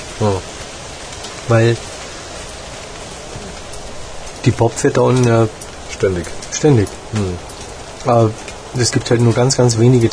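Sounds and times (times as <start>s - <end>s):
steady dense rain falling like a downpour: 0.0s - 10.1s
speech: 0.2s - 0.5s, 1.5s - 1.9s, 4.4s - 10.1s.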